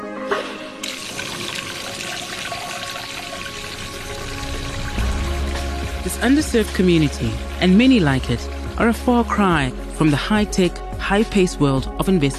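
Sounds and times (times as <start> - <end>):
water gushing from a truck into containers: 0.8 - 7.6
speech: 6.1 - 12.3.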